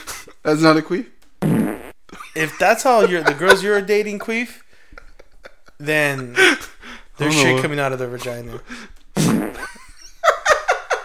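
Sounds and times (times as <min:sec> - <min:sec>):
speech: 0:00.5 - 0:01.2, 0:02.4 - 0:04.6, 0:05.8 - 0:08.9
loud wet sputtering fart sound effect: 0:01.4 - 0:02.0, 0:09.2 - 0:09.8
laughter: 0:02.1 - 0:11.0.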